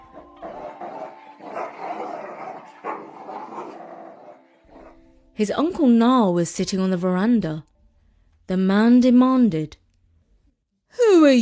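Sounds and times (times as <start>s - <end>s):
dogs snarling and barking: 0.0s - 5.0s
speech: 5.4s - 7.7s, 8.5s - 9.8s, 11.2s - 11.4s.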